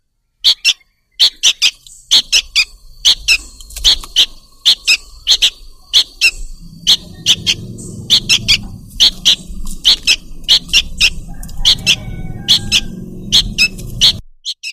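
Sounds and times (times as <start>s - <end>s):
bird lure calls of rapid sharp high chips: 0.5s - 14.2s
low droning hum: 2.6s - 14.3s.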